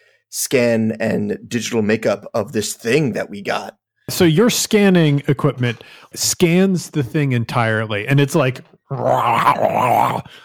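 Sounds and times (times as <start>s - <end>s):
speech: 0.3s - 10.4s
voice imitating a creature growling inside its binding in a containment unit: 8.9s - 10.3s.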